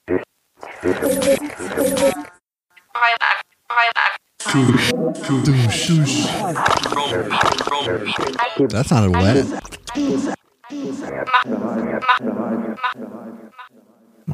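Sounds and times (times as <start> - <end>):
speech: 0.8 - 2.2, 4.6 - 10.4, 11.1 - 13.5
voice run through an echo effect: 4.0 - 14.3.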